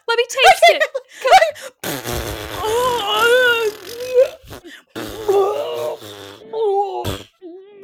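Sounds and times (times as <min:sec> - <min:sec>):
speech: 0:00.2 - 0:00.5
drawn-out wavering fart noises: 0:01.8 - 0:07.4.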